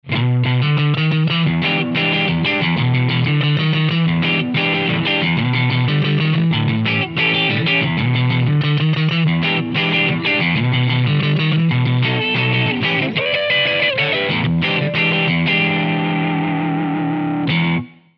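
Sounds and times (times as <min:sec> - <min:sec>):
crunch electric guitar through a multi-effects processor: 0:00.0 - 0:18.1.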